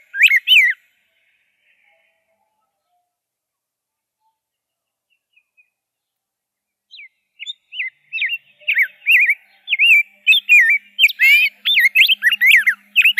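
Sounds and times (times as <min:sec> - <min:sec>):
Rose-breasted grosbeak song: 0:00.0 - 0:03.0, 0:06.9 - 0:13.1.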